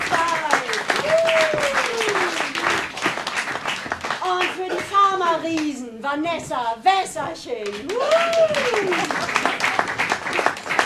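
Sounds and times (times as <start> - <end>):
audience applause at a stage show: 0.0 - 5.0, 7.8 - 10.8
speech: 5.3 - 9.4.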